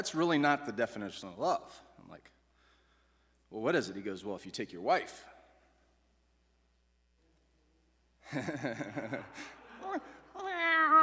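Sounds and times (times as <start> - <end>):
speech: 0.0 - 2.4, 3.5 - 5.3, 8.3 - 11.0
person chuckling: 8.3 - 10.3
person imitating a cat meow: 10.4 - 11.0.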